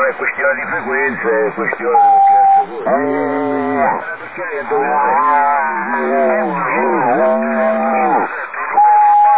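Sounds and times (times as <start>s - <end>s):
speech: 0.2s - 6.6s
man imitating a cow mooing over a narrow-sounding radio link: 2.0s - 4.0s, 4.8s - 9.3s.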